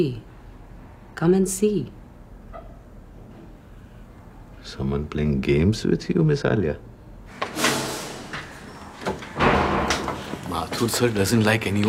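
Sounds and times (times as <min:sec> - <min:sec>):
speech: 0:00.0 - 0:00.3, 0:01.2 - 0:02.0, 0:04.6 - 0:06.9, 0:10.8 - 0:11.8
door creaking and scraping open: 0:07.3 - 0:11.0.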